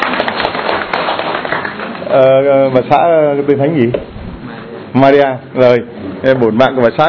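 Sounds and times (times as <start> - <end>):
crowd applauding: 0.0 - 2.4
speech: 2.1 - 4.1, 4.9 - 7.0.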